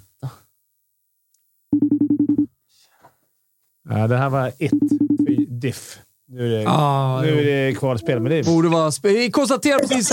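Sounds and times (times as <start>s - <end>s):
phone ringing tone: 1.8s - 2.5s
speech: 3.9s - 10.1s.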